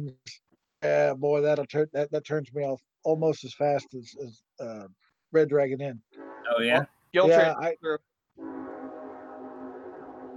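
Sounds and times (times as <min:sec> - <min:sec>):
speech: 0:00.0 - 0:08.5
train horn blast: 0:06.2 - 0:06.8, 0:08.4 - 0:10.3.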